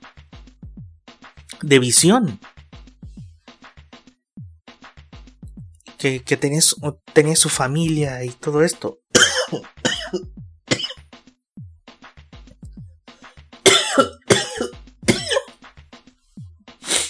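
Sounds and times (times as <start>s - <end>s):
speech: 1.6s - 2.5s, 6.0s - 10.4s
person coughing in cold weather: 9.2s - 11.0s, 13.7s - 15.5s.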